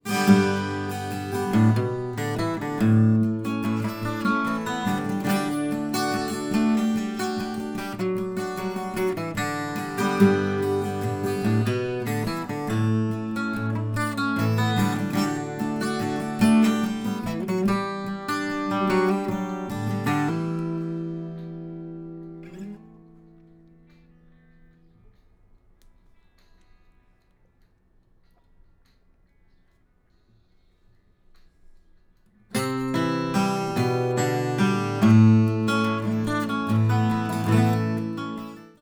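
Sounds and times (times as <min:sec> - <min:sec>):
acoustic guitar: 0:00.0 - 0:25.2, 0:32.3 - 0:38.7.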